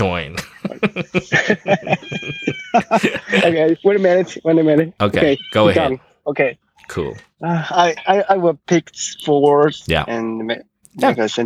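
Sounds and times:
speech: 0.0 - 11.4
laughter: 0.2 - 4.9
cat meowing in short chirpy calls: 1.9 - 2.9, 5.1 - 6.0.

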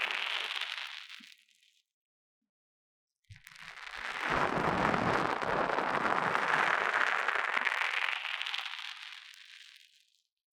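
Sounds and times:
foam rubbing and squeezing: 0.0 - 1.4, 3.3 - 10.0.

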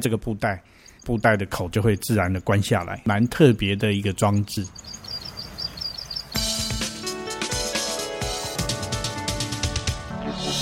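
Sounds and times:
speech: 0.0 - 5.1
plain prinia calling di di di: 0.0 - 7.0
loud instrumental music: 6.4 - 10.6.

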